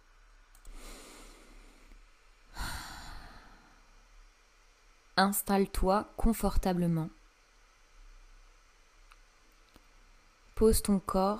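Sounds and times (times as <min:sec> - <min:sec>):
deep breathing during relaxation exercise: 0:00.6 - 0:03.9
speech: 0:05.2 - 0:07.2, 0:10.6 - 0:11.3.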